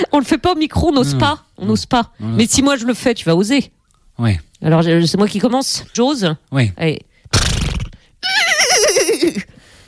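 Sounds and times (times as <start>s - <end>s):
speech: 0.2s - 7.4s
person imitating a horse whinny: 8.2s - 9.5s.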